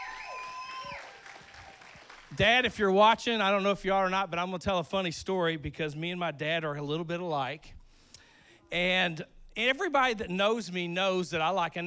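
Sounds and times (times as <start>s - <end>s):
audience applauding for fathers: 0.0s - 2.6s
speech: 2.4s - 7.8s, 8.7s - 11.8s.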